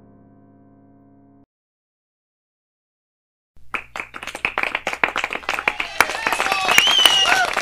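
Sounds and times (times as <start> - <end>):
crowd applauding: 3.6 - 7.6
shrill whistles: 5.6 - 7.6.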